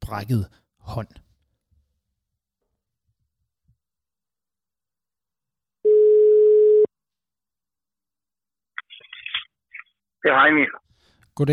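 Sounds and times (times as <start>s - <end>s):
speech: 0.1s - 1.3s, 10.2s - 10.8s, 11.4s - 11.5s
ringback tone on a phone line: 5.8s - 6.9s.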